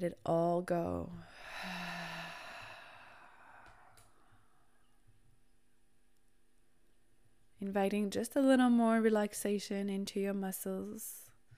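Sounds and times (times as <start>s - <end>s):
speech: 0.0s - 1.8s, 7.6s - 11.2s
deep breath in and out during a relaxation exercise: 1.2s - 4.7s.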